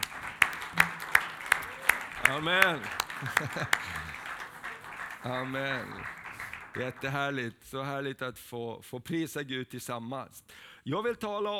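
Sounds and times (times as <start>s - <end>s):
laughter: 0.0s - 7.2s
audience clapping along in rhythm: 0.0s - 7.4s
soft wash of noise: 0.0s - 11.5s
speech: 2.3s - 4.1s, 5.2s - 6.2s, 6.8s - 11.5s.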